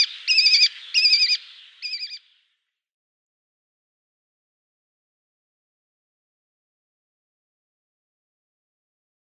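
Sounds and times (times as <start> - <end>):
lesser kestrel rasping calls: 0.0 - 2.2.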